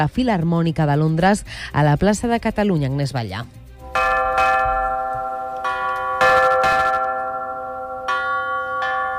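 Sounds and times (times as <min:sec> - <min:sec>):
speech: 0:00.0 - 0:03.6
church bells ringing: 0:03.9 - 0:09.1.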